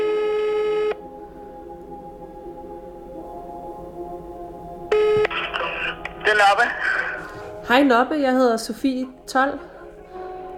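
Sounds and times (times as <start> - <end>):
loud electronic telephone dialing tone: 0.0 - 1.0, 4.9 - 6.4
quieter steady telephone ringback tone on the line: 0.0 - 1.0, 4.9 - 7.2
speech: 6.4 - 7.0, 7.7 - 9.7.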